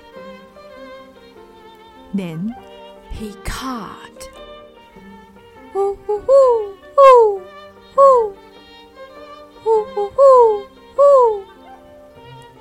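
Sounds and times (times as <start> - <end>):
speech: 2.1 - 4.2, 5.7 - 7.3
great horned owl hooting: 5.8 - 8.4, 9.6 - 11.6.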